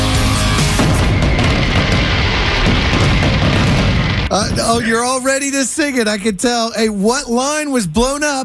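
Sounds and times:
fireworks explosions with deep booming rumble: 0.1s - 5.4s
speech: 4.6s - 8.4s.

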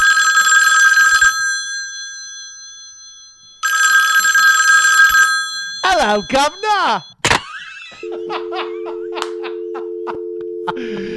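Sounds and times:
old-style telephone bell ringing loudly: 0.0s - 7.1s, 8.0s - 10.9s
speech: 6.1s - 7.1s
laughter: 7.3s - 11.1s.

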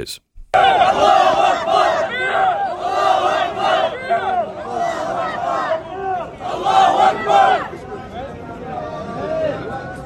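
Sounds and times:
speech: 0.0s - 2.6s
large crowd of activists shouting: 0.5s - 10.0s.

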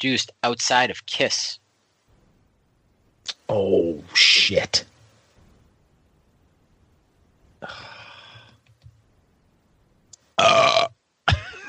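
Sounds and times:
speech: 0.0s - 1.6s, 3.5s - 4.9s, 10.4s - 10.9s
person burping: 10.4s - 11.6s.

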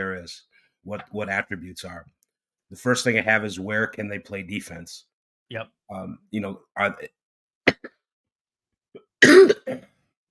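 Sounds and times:
speech: 0.0s - 7.2s
person coughing: 9.0s - 10.0s
throat clearing: 9.0s - 10.0s.

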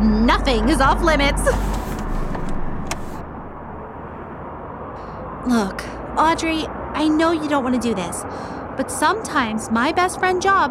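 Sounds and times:
car driving past on road: 0.0s - 5.0s
speech: 0.4s - 1.8s, 5.4s - 10.6s.

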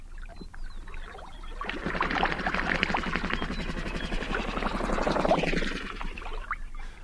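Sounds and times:
chorus of many migratory birds at a prairie watering hole: 0.3s - 7.0s
bird wings fluttering: 1.5s - 6.5s.

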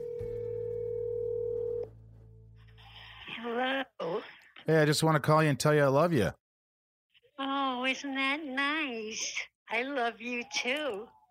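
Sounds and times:
telephone dial tone while placing a call: 0.0s - 1.9s
speech: 4.7s - 6.4s, 7.9s - 11.2s.

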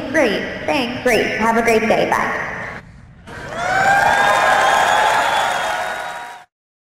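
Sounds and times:
speech: 0.1s - 2.5s
crowd cheering and applauding: 3.3s - 6.5s.

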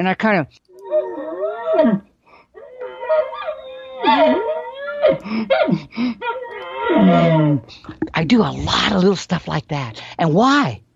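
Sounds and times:
speech: 0.0s - 0.6s, 1.8s - 2.1s, 4.1s - 4.4s, 5.1s - 10.8s
human voice imitating an excited bull calling to a cow: 6.4s - 8.1s.

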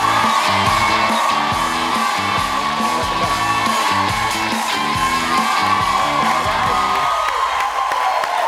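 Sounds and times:
bouncy band playing: 0.0s - 7.3s
large TV studio audience cheering and whooping: 0.0s - 8.4s
steady roar of applause: 0.0s - 8.4s.

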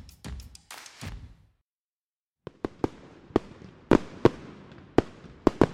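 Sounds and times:
fireworks popping and crackling: 2.5s - 5.7s.

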